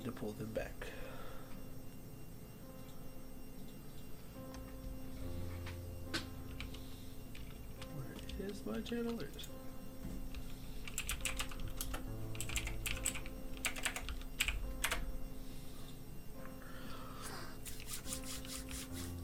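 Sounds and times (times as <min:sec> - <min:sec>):
steady low hum: 0:00.0 - 0:19.2
speech: 0:00.1 - 0:01.0, 0:08.6 - 0:09.6
rapid computer keyboard typing with sharp clicking keystrokes: 0:05.7 - 0:09.6, 0:10.3 - 0:15.1.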